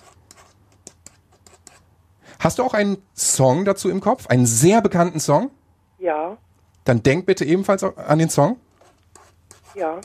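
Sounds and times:
pen scratching on paper as a prediction is written: 0:00.0 - 0:01.9, 0:08.8 - 0:10.0
speech: 0:02.4 - 0:08.6, 0:09.8 - 0:10.0.

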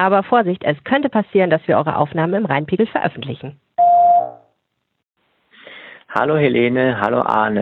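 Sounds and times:
speech: 0:00.0 - 0:03.6, 0:06.1 - 0:07.6
answering machine electronic beep: 0:03.8 - 0:04.4.

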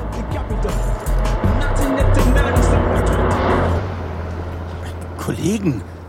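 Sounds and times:
bass-heavy hip-hop music playing from inside a car: 0:00.0 - 0:03.8
bright yellow car rolling past: 0:01.0 - 0:05.1
speech: 0:05.4 - 0:05.9.

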